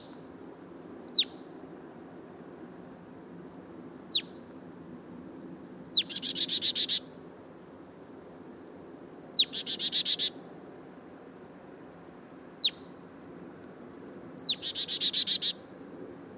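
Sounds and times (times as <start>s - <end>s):
marsh tit Poecile palustris calling with sharp high notes and buzzy chattering: 0.9s - 1.4s, 3.9s - 4.3s, 5.7s - 7.1s, 9.1s - 10.4s, 12.4s - 12.8s, 14.2s - 15.6s.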